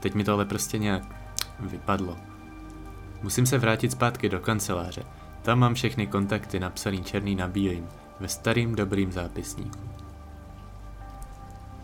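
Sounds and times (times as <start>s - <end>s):
speech: 0.0s - 2.4s, 3.2s - 10.0s
steady rain pattering onto a hard surface: 8.6s - 11.8s.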